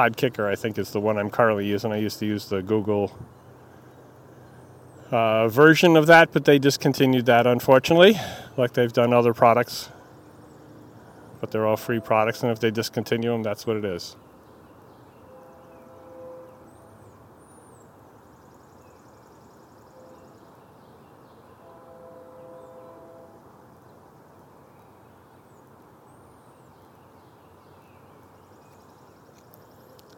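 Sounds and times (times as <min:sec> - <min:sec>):
speech: 0:00.0 - 0:03.4, 0:05.1 - 0:10.0, 0:11.4 - 0:14.2
train rumbling through level crossings: 0:00.0 - 0:24.7
birds chirping overhead: 0:00.0 - 0:30.1
faint train horn at crossings: 0:11.0 - 0:12.9, 0:15.1 - 0:17.2, 0:19.7 - 0:20.8, 0:21.4 - 0:23.8.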